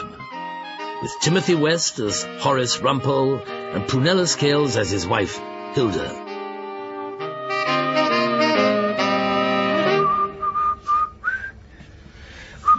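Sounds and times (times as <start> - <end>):
instrumental music: 0.0 - 11.2
speech: 1.0 - 6.2
person whistling a short tune: 9.7 - 11.6, 12.6 - 12.7.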